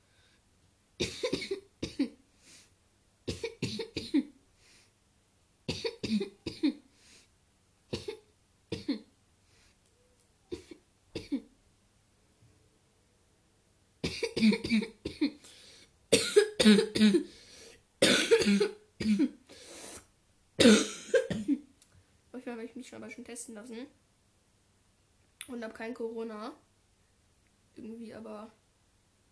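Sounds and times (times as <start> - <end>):
person coughing harshly: 1.0 - 2.2, 3.3 - 4.4, 5.7 - 6.8, 8.0 - 9.1, 10.5 - 11.5, 14.0 - 15.4, 16.1 - 17.4, 18.0 - 19.4, 20.6 - 21.7
speech: 23.2 - 24.0, 25.5 - 26.6, 27.8 - 28.6.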